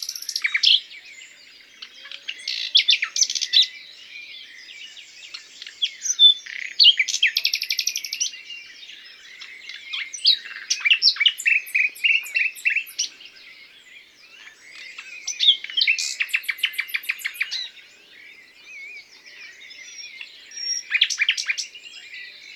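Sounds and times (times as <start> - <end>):
common nightingale Luscinia megarhynchos singing: 0.0 - 22.5.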